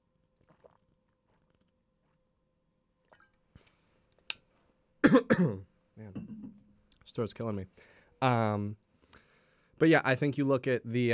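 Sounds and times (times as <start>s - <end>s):
person gulping: 0.4s - 2.2s, 3.0s - 3.4s, 5.0s - 6.6s
person sipping water at the mic: 0.4s - 2.2s, 3.1s - 3.8s
speech: 5.2s - 6.1s, 7.2s - 8.8s, 9.8s - 11.1s.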